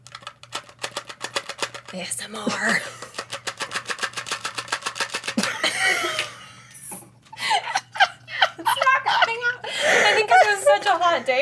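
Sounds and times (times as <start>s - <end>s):
gel pills rattling out of a plastic bottle: 0.0s - 6.2s
faint steady hum: 0.0s - 11.3s
speech: 1.9s - 3.1s
laughter: 5.4s - 6.8s, 7.4s - 11.3s.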